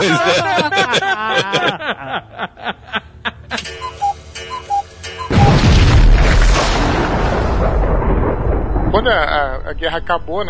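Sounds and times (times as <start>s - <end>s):
laughter: 0.0s - 3.7s
speech: 0.0s - 3.9s, 9.1s - 10.4s
clock ticking: 3.6s - 5.5s
short beeps: 3.6s - 5.7s
massive bomb explosion: 5.3s - 10.4s.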